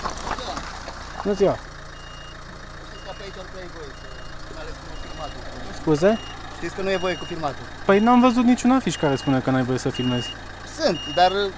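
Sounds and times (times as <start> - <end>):
4x4 off-road vehicle engine idling: 0.0 - 11.5
speech: 1.2 - 1.7, 3.2 - 11.5.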